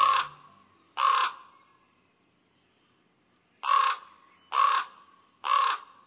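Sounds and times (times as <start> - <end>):
common raven croaking: 0.0 - 1.5, 3.6 - 6.0.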